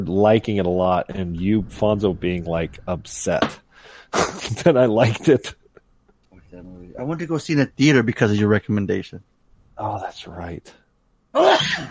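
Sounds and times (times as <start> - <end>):
speech: 0.0 - 5.6, 6.5 - 11.8
person sneezing: 4.1 - 4.6, 11.4 - 11.8.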